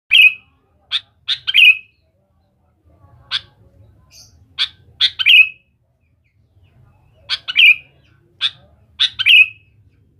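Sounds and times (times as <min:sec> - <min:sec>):
sooty-headed bulbul song: 0:00.1 - 0:02.0, 0:03.3 - 0:05.8, 0:07.2 - 0:09.8.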